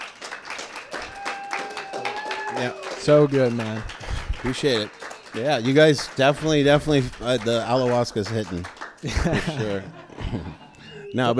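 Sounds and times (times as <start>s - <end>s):
small audience round of applause: 0.0s - 10.8s
brief tonal cheers or whistles: 0.8s - 5.7s
laughter: 1.2s - 11.3s
speech: 2.5s - 11.3s.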